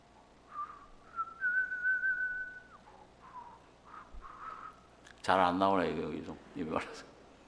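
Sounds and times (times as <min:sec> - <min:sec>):
person whistling a slow hymn tune: 0:00.5 - 0:03.6
speech: 0:05.2 - 0:07.1.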